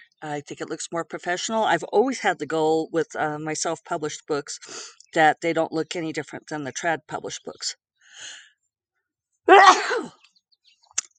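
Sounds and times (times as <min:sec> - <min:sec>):
speech: 0:00.2 - 0:08.4, 0:09.5 - 0:10.2
loud sneeze: 0:09.5 - 0:10.1.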